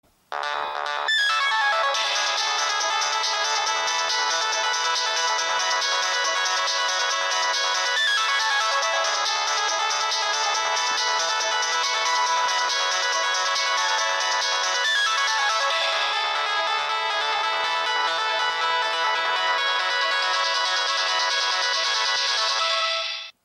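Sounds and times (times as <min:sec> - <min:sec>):
Nokia 6020 mobile phone ringtone: 0:00.3 - 0:23.3.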